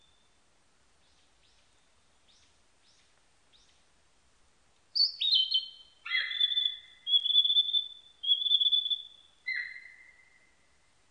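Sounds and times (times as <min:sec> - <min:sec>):
Narcissus flycatcher singing: 0:05.0 - 0:10.3.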